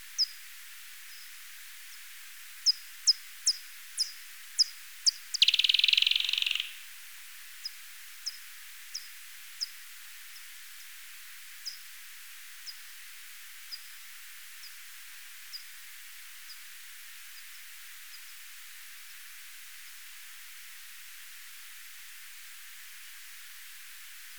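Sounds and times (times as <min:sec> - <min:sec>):
Japanese pipistrelle echolocation calls: 0:05.4 - 0:06.8.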